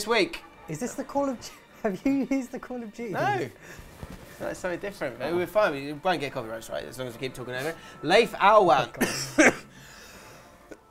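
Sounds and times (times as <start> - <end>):
speech: 0.0 - 9.6
person coughing: 9.0 - 9.8.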